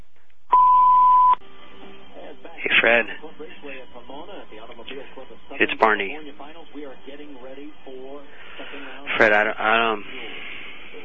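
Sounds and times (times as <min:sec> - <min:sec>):
answering machine beep: 0:00.5 - 0:01.4
speech: 0:02.8 - 0:10.4.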